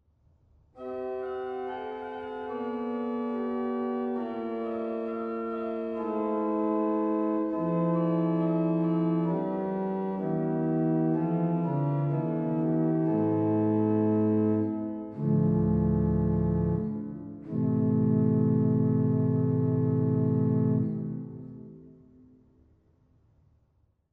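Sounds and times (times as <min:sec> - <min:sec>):
Principal 8 stop on a Sauer pipe organ in Dortmund: 0:00.8 - 0:21.7.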